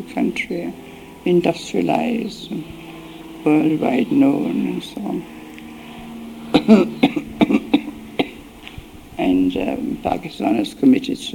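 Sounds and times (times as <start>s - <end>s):
speech: 0.0s - 5.4s, 6.7s - 7.3s, 9.2s - 11.3s
short shallow weak coughs: 6.5s - 8.4s.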